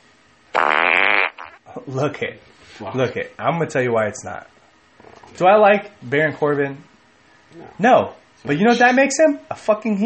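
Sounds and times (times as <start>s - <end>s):
loud buzzy mouth-made raspberry fart noise: 0.5s - 1.6s
speech: 1.8s - 6.9s, 7.5s - 10.0s.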